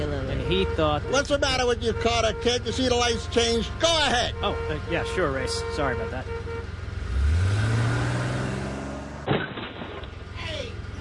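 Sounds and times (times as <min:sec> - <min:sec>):
car engine revving: 0:00.0 - 0:09.3
speech: 0:00.5 - 0:06.5
crunching thud of a car backing into another car: 0:08.1 - 0:10.4.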